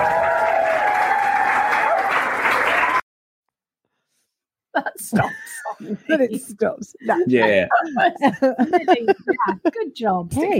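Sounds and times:
crowd clapping: 0.0s - 3.0s
voices cheering: 0.0s - 3.0s
laughter: 5.1s - 10.5s
speech: 5.1s - 10.5s.

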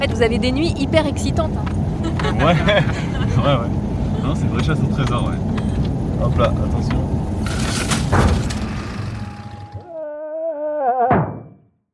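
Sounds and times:
speech: 0.0s - 5.5s, 6.2s - 8.5s
steady car road rumble: 0.0s - 10.0s
laughter: 2.0s - 4.4s
car brushing a tree: 7.3s - 9.8s
sharp knock: 11.1s - 11.6s.

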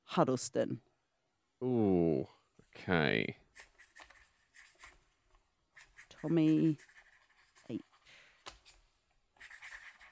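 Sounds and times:
speech: 0.2s - 0.9s, 1.6s - 3.7s, 6.2s - 6.9s, 7.7s - 7.9s
pencil scribbling on paper: 3.5s - 5.0s, 5.7s - 8.8s, 9.4s - 10.1s.

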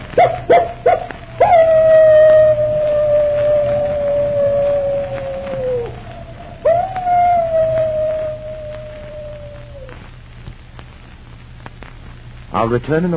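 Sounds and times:
low hum: 0.0s - 12.7s
wolf dog howling: 0.2s - 10.0s
speech: 12.6s - 13.1s.

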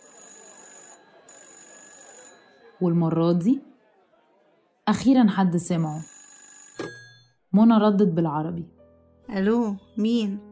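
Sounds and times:
telephone ringing with a high electronic tone: 0.0s - 3.6s, 5.6s - 7.4s
speech: 2.8s - 3.7s, 4.9s - 6.1s, 7.6s - 10.4s.

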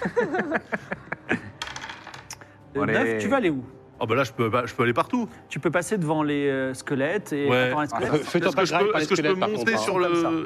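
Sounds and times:
speech: 0.0s - 1.0s, 2.8s - 10.4s
laughter: 0.0s - 1.6s
two-sided dice rolled in a tabletop game: 1.6s - 2.4s.

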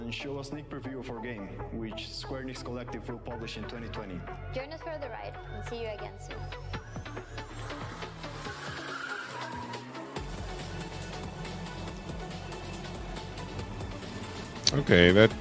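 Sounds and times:
speech: 0.1s - 8.3s, 14.7s - 15.4s
small racing car engines roaring: 6.8s - 15.4s
tires screeching and skidding through drifting turns: 6.8s - 15.4s.

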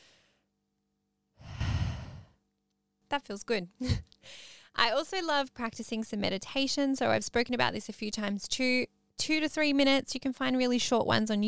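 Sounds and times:
deep breath in and out during a relaxation exercise: 1.4s - 2.4s
speech: 3.1s - 11.4s.

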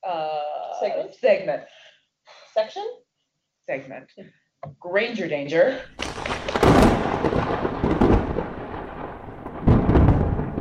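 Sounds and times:
speech: 0.8s - 1.8s, 2.6s - 3.0s, 3.7s - 7.4s
sharp crack of thunder opening into a deep rolling rumble: 5.9s - 10.5s.

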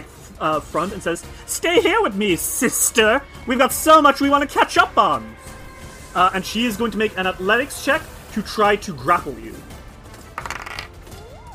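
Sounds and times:
speech: 0.4s - 5.5s, 6.1s - 9.7s
dice tumbling across a hard tabletop: 10.4s - 11.0s.

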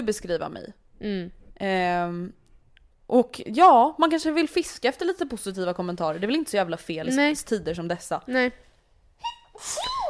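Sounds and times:
speech: 0.0s - 2.4s, 3.1s - 10.0s
loud sneeze: 9.2s - 10.0s.

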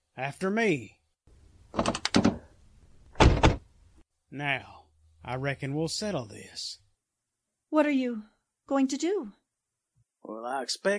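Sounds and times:
speech: 0.2s - 1.0s, 4.4s - 6.8s, 7.7s - 9.4s, 10.2s - 10.9s
heavy door clunk as it swings or settles: 3.2s - 3.6s.

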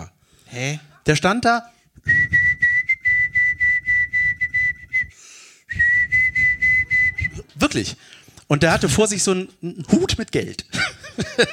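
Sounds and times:
speech: 0.5s - 2.2s, 7.7s - 11.5s
person whistling a high note imitating a flute: 2.0s - 7.5s
laughter: 10.7s - 11.5s.

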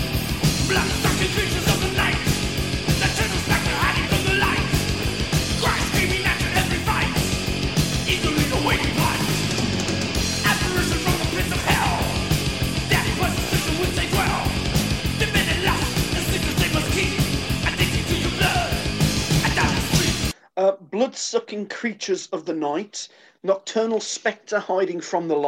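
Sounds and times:
distorted guitars in a thrash metal chorus: 0.0s - 20.3s
fast pounding drums in a thrash metal chorus: 0.0s - 20.3s
screamed vocals in a thrash metal chorus: 0.6s - 2.4s, 3.0s - 4.9s, 5.5s - 7.3s, 8.0s - 9.6s, 10.4s - 12.2s, 12.9s - 14.6s, 15.2s - 20.4s
speech: 0.7s - 1.6s, 21.0s - 25.4s.

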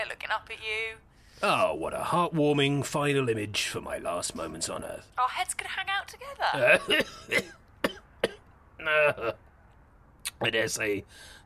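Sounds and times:
speech: 0.0s - 9.5s, 10.4s - 11.4s
person coughing: 6.6s - 9.4s.

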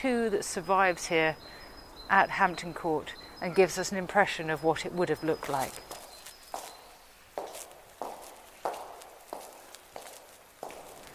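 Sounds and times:
speech: 0.0s - 6.0s
slow footsteps walking down an empty palace corridor: 5.5s - 11.1s.

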